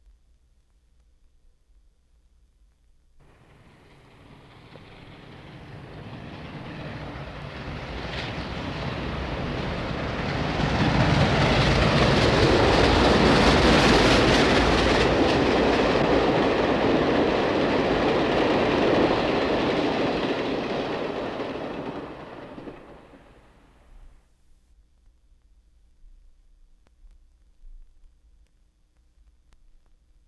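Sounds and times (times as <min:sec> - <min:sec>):
passenger train passing rapidly: 0:03.2 - 0:24.2.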